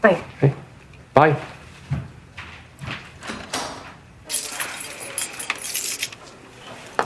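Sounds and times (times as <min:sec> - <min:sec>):
speech: 0:00.0 - 0:00.6, 0:01.2 - 0:01.6
set of keys jangling: 0:04.3 - 0:06.2.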